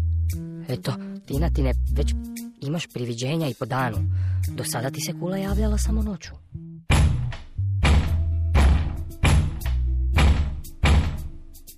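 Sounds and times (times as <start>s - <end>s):
speech: 0.3s - 6.6s
heavy pounding on the big door of a tower: 6.9s - 11.4s.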